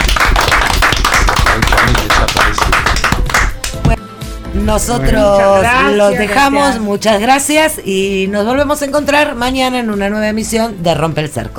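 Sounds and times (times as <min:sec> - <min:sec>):
group applauding their companions: 0:00.0 - 0:04.0
speech: 0:04.6 - 0:11.5.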